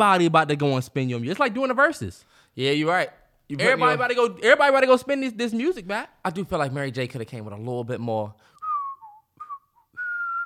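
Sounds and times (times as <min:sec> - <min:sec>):
speech: 0:00.0 - 0:08.5
person whistling a short melodic phrase: 0:08.6 - 0:10.4.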